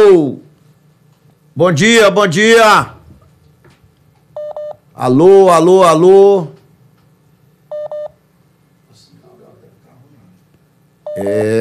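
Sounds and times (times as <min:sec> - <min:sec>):
faint hum: 0:00.0 - 0:11.5
speech: 0:01.6 - 0:03.0, 0:05.0 - 0:06.6, 0:11.2 - 0:11.5
telephone keypad dialing tones: 0:04.4 - 0:04.8, 0:07.7 - 0:08.1.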